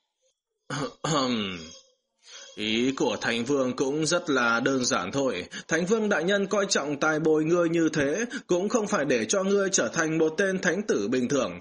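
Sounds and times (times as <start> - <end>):
speech: 0.7 - 1.8, 2.6 - 11.5
young man clearing his throat: 0.7 - 1.8.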